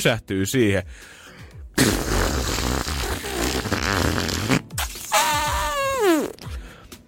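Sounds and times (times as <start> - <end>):
speech: 0.0 - 1.2, 1.8 - 2.0
voice imitating a long sputtering fart: 1.8 - 6.6.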